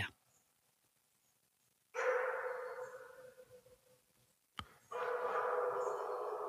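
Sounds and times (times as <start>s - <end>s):
wolf barking and howling: 2.0s - 3.7s, 4.9s - 6.4s.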